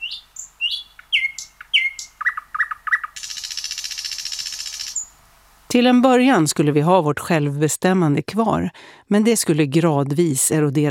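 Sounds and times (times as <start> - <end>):
nightingale singing: 0.0 - 5.2
speech: 5.8 - 10.9.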